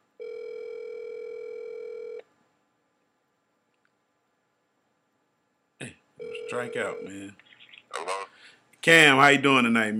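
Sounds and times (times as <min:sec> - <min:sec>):
steady electronic ringing tone of an outgoing phone call: 0:00.2 - 0:02.2, 0:06.2 - 0:07.3
speech: 0:06.5 - 0:07.5, 0:08.8 - 0:09.9.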